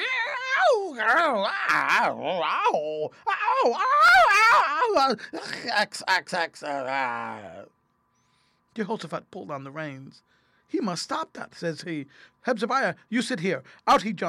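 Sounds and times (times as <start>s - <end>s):
human voice imitating dogs growling, barking and squealing in a fight: 0.0s - 5.8s, 6.4s - 7.6s
speech: 0.8s - 7.8s, 8.8s - 14.2s.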